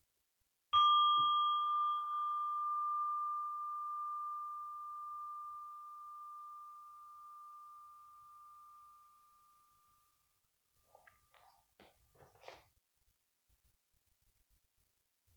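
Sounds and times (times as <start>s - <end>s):
meditation bell ringing at the end of a meditation: 0.8s - 10.2s.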